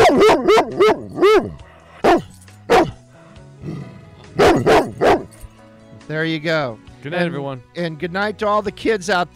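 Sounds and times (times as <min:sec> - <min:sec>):
dog barking: 0:00.0 - 0:03.0, 0:04.4 - 0:05.4
speech: 0:06.1 - 0:09.3.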